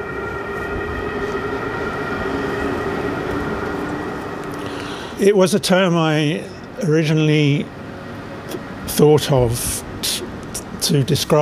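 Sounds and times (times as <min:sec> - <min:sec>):
siren with sustained high tones at night: 0:00.0 - 0:06.8
train rolling stock rumbling at night: 0:00.0 - 0:11.4
speech: 0:05.2 - 0:07.8, 0:08.9 - 0:09.8, 0:10.9 - 0:11.4.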